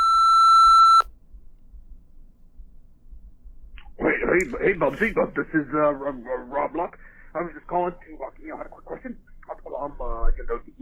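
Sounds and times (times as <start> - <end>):
electronic voicemail beep: 0.0 - 1.0
speech: 4.4 - 10.7.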